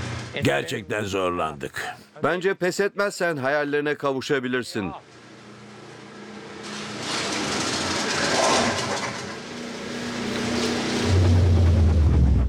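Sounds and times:
speech: 0:00.4 - 0:05.2
engine breaking down: 0:05.5 - 0:12.4.

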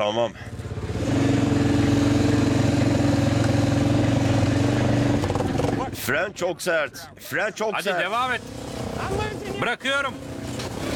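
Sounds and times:
speech: 0:00.0 - 0:00.6, 0:06.1 - 0:10.3
vehicle engine droning in low gear while pushed: 0:00.3 - 0:06.2, 0:08.1 - 0:10.9.

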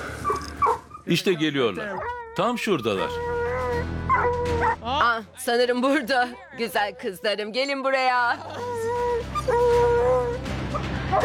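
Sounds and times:
dogs whimpering and yelping: 0:00.0 - 0:04.8, 0:08.4 - 0:11.2
speech: 0:01.1 - 0:09.9.

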